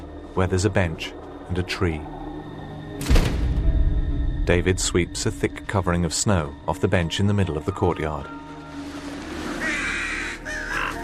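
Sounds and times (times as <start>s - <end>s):
speech: 0.4s - 2.2s, 3.0s - 3.3s, 4.5s - 8.4s
crows cawing over a snowy courtyard: 9.5s - 11.0s.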